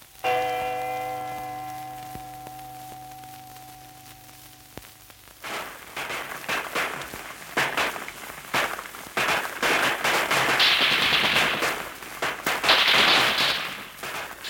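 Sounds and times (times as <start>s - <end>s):
sustained ringing tone: 0.0s - 5.2s
grenade explosions in a night uprising on Texel: 5.4s - 14.4s
rattling machine gun fire in a night uprising on Texel: 5.4s - 14.4s.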